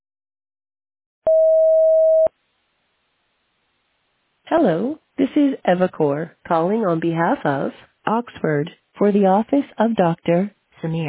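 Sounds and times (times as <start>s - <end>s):
voicemail recording electronic beep: 1.3s - 2.3s
speech: 4.5s - 11.0s.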